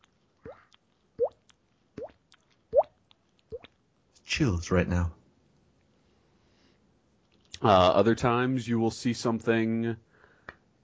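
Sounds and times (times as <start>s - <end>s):
water dripping from a leaky faucet: 0.0s - 3.8s
speech: 4.3s - 5.2s, 7.6s - 10.1s.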